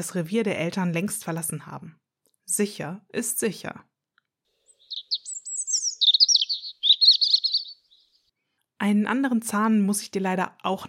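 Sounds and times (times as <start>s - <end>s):
speech: 0.0s - 3.9s, 8.8s - 10.8s
small songbird singing, likely a European robin: 4.6s - 8.3s.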